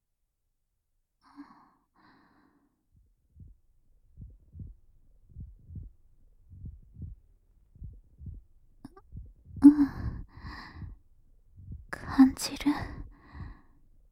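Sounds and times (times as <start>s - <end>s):
heartbeat thumping in paired beats: 2.9s - 13.7s.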